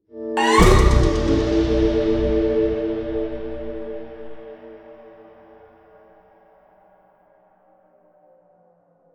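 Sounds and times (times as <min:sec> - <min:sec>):
big musical stinger: 0:00.4 - 0:04.5.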